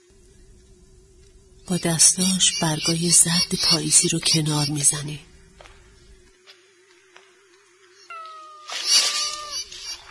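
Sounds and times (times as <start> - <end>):
speech: 1.7 - 5.3
cat meowing in an autumn garden: 8.1 - 9.7.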